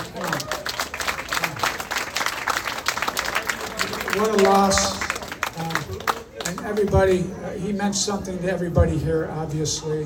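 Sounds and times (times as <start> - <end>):
audience applause at a remembrance concert: 0.0 - 6.6
speech: 4.2 - 5.0, 6.7 - 10.0.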